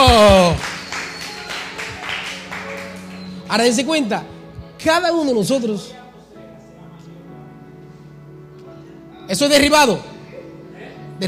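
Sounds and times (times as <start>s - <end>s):
audience clapping: 0.0s - 3.6s
speech: 3.5s - 6.0s, 9.3s - 10.1s.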